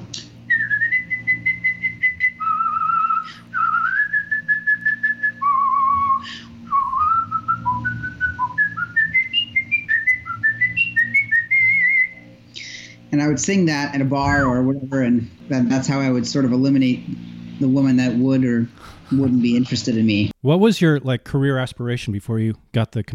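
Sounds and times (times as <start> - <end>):
person whistling a tune: 0.5 - 12.2
speech: 13.2 - 23.1.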